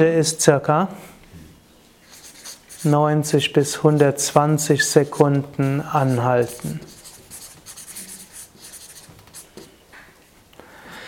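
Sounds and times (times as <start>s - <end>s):
speech: 0.0s - 1.1s, 2.8s - 6.9s
handwriting scratching strokes: 2.1s - 3.0s, 3.8s - 9.7s.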